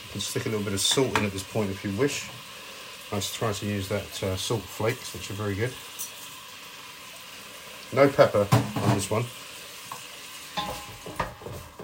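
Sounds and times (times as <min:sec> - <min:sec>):
onions sizzling in a hot pan: 0:00.0 - 0:11.8
speech: 0:00.1 - 0:02.5, 0:03.1 - 0:05.9, 0:07.9 - 0:09.4
utensil scraping and stirring onions in a pan: 0:10.6 - 0:11.8.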